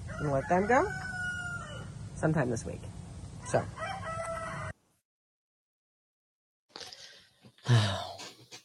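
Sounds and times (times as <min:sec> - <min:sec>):
roosters crowing in a yard: 0:00.0 - 0:02.2, 0:03.4 - 0:04.8
speech: 0:00.2 - 0:01.0, 0:02.2 - 0:03.9.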